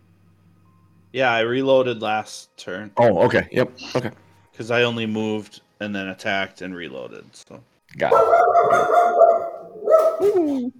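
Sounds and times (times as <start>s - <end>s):
speech: 1.1s - 9.3s, 10.2s - 10.7s
dog barking and whining: 8.1s - 10.7s.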